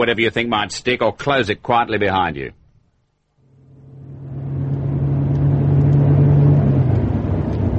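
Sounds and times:
speech: 0.0s - 2.6s
car engine droning while driving: 3.4s - 7.7s.

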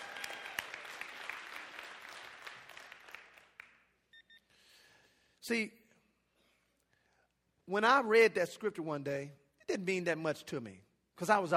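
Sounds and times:
audience applauding: 0.0s - 3.9s
speech: 5.5s - 5.8s, 7.7s - 11.5s.

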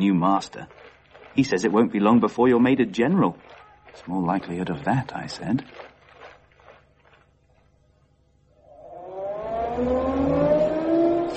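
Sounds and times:
speech: 0.0s - 0.8s, 1.4s - 5.9s
faint footsteps or shuffling: 0.0s - 1.8s, 3.0s - 7.8s
car engine revving as the car draws closer: 8.6s - 11.3s.

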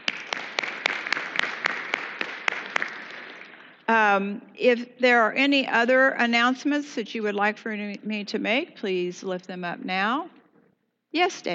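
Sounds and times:
roomful of people applauding: 0.0s - 3.8s
louder evenly spaced claps in a quick rhythm: 0.0s - 3.9s
speech: 3.9s - 10.4s, 11.1s - 11.5s.

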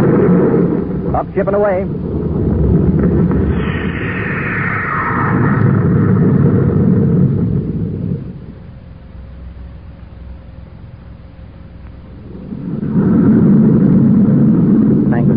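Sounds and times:
rocket ship blast-off roar: 0.0s - 8.6s, 12.0s - 15.3s
faint whine: 0.0s - 15.3s
low steady hum: 0.0s - 15.3s
speech: 1.2s - 3.1s.

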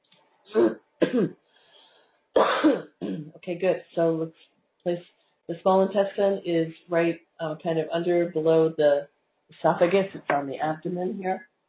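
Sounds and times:
person clearing throat: 0.5s - 1.3s, 2.4s - 3.3s
person coughing harshly: 0.5s - 1.3s, 2.4s - 3.3s
speech: 0.5s - 1.4s, 3.5s - 11.5s.

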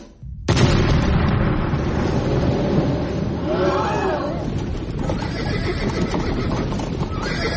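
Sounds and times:
circus cannon being fired: 0.2s - 3.5s
stampeding ponies' hooves in a performing ponies stable: 4.6s - 7.5s
horse whinnying shrilly: 5.0s - 7.5s.

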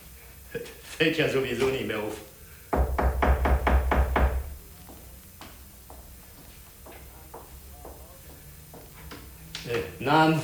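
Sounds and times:
speech: 0.6s - 2.3s, 10.1s - 10.4s
knocking on a door: 2.7s - 4.6s.

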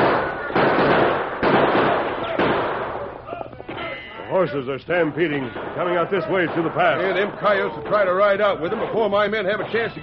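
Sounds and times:
gunshots in a western shootout between posse and outlaws: 0.0s - 3.3s, 5.1s - 8.5s
speech: 4.4s - 10.0s.

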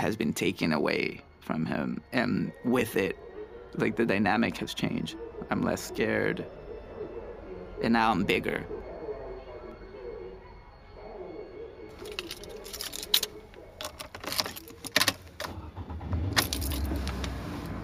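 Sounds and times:
speech: 0.0s - 6.6s, 7.8s - 8.9s
keys jangling: 11.9s - 15.5s, 16.3s - 17.7s
clicks and clunks of someone climbing into a car: 12.0s - 17.5s.

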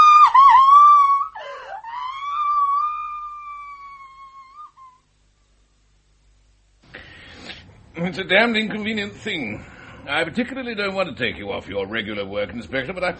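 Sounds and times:
girl screaming: 0.0s - 5.0s
speech: 8.0s - 13.1s.

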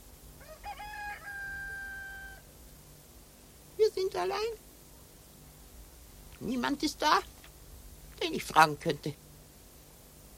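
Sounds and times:
rooster crowing: 0.4s - 2.5s
speech: 4.0s - 4.6s, 6.4s - 7.3s, 8.2s - 9.2s.

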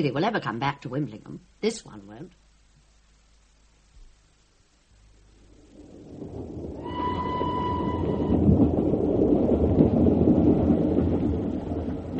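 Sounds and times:
speech: 0.0s - 2.4s
train rumbling: 6.2s - 12.1s
brief tonal train whistle: 6.8s - 8.6s.

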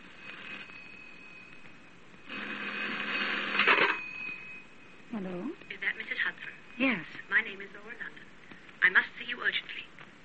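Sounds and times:
telephone with bright rattling bell ringing: 0.0s - 7.8s.

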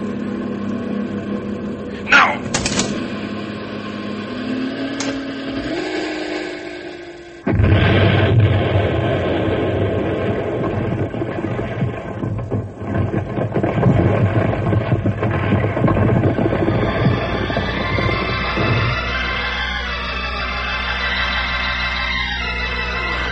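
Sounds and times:
heavy runaway truck engine droning: 0.0s - 12.9s, 14.3s - 23.2s
sudden sustained roaring burst: 1.8s - 23.2s
man shouting: 2.0s - 2.6s.

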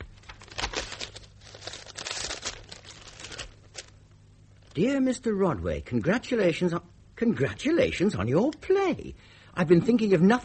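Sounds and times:
paper envelope being handled and opened: 0.0s - 4.0s
speech: 4.8s - 10.4s.

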